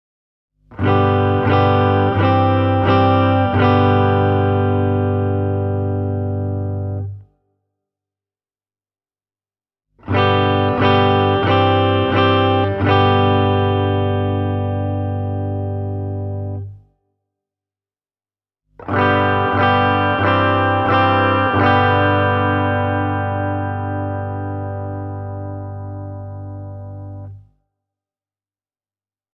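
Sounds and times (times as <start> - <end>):
clean semi-acoustic electric guitar: 0.8 - 7.2, 10.0 - 16.8, 18.8 - 27.4.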